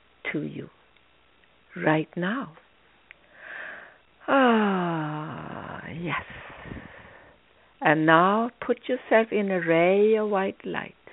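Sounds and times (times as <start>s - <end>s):
speech: 0.3s - 0.8s, 1.8s - 2.6s, 4.3s - 6.8s, 7.8s - 11.0s
deep breath drawn in through the nose: 6.3s - 7.7s.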